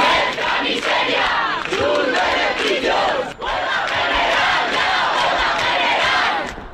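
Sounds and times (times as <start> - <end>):
large protest crowd shouting and booing outside the Congress: 0.0 - 6.6.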